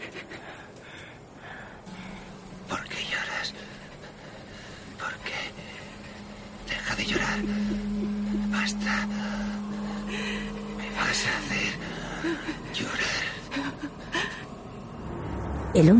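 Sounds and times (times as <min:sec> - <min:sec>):
low steady hum: 0:00.0 - 0:15.9
woman crying: 0:06.2 - 0:14.6.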